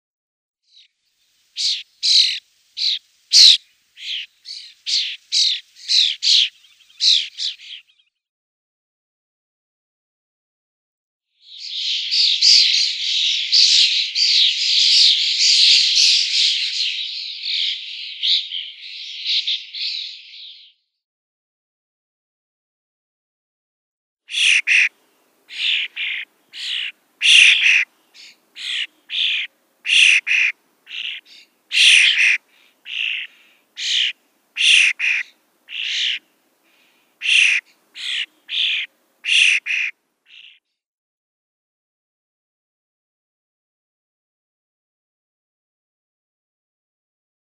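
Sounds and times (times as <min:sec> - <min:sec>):
European starling nestlings: 0:01.5 - 0:08.0, 0:11.4 - 0:20.7, 0:24.3 - 0:24.9, 0:25.5 - 0:36.2, 0:36.8 - 0:40.6.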